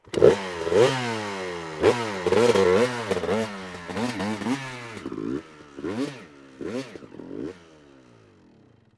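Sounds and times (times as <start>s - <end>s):
motorcycle: 0.0s - 8.9s.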